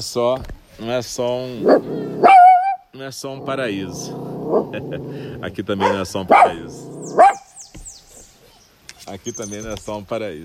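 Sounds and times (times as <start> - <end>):
speech: 0.0 - 2.4, 3.0 - 7.3, 9.1 - 10.4
dog barking: 1.6 - 2.8, 5.8 - 7.5
laughter: 4.7 - 5.6.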